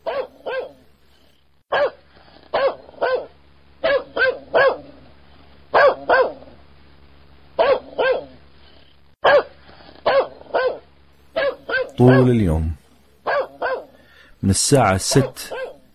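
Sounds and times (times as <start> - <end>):
dog barking: 0.0 - 0.8, 1.7 - 5.0, 5.7 - 6.5, 7.6 - 8.4, 9.2 - 12.4, 13.2 - 14.0, 15.1 - 15.9
speech: 12.0 - 12.8, 14.4 - 15.6.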